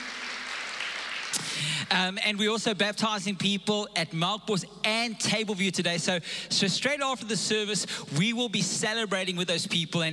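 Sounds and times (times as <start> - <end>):
crowd applause: 0.0 - 1.9
speech: 1.9 - 10.1.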